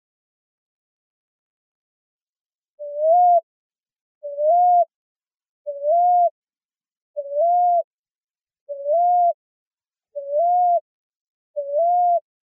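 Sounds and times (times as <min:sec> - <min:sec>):
common ground dove cooing in Arizona United States: 0:02.8 - 0:03.4, 0:04.2 - 0:04.9, 0:05.7 - 0:06.4, 0:07.2 - 0:07.9, 0:08.7 - 0:09.4, 0:10.2 - 0:10.8, 0:11.6 - 0:12.2.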